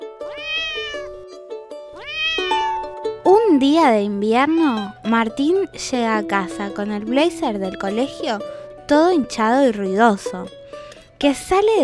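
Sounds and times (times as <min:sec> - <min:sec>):
white kitten with black and brown patches meowing: 0:00.3 - 0:01.3, 0:01.9 - 0:03.0
speech: 0:03.6 - 0:10.6, 0:11.2 - 0:11.8.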